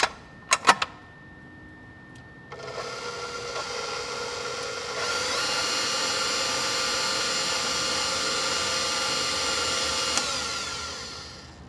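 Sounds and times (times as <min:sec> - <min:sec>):
stand mixer with paddle attachment mixing seasoned bratwurst sausage meat: 0:02.5 - 0:11.6
sharp clicks: 0:10.1 - 0:10.3.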